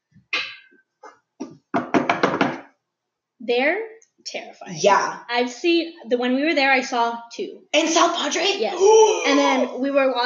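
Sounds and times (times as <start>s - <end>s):
knocking on a hard non-wooden surface: 1.4s - 2.6s
speech: 3.5s - 10.2s.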